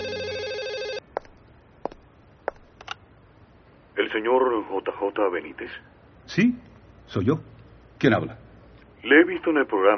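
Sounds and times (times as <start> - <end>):
hotel telephone ringing for an incoming call: 0.0 - 1.1
speech: 4.2 - 8.4, 9.0 - 9.9.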